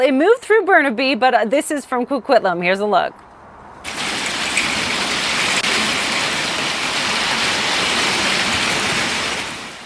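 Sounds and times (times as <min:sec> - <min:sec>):
speech: 0:00.0 - 0:03.3
heavy downpour of rain and hail: 0:03.9 - 0:09.8.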